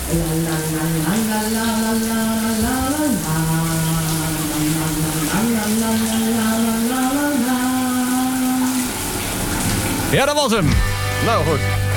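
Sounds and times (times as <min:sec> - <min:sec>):
person singing a wavering wordless tune: 0:00.0 - 0:09.0
shower water running from tap: 0:00.0 - 0:11.9
speech: 0:00.1 - 0:02.7, 0:10.1 - 0:11.8.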